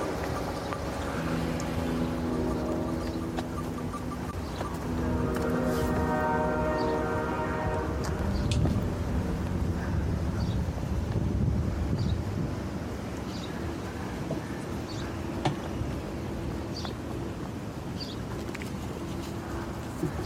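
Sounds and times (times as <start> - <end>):
train horn: 0.0 - 10.3
distant train rumbling: 0.0 - 20.2
low roar: 0.0 - 20.2.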